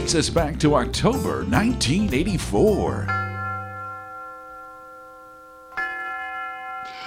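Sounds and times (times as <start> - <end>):
speech: 0.1 - 3.2
university tower chimes ringing: 2.9 - 7.0.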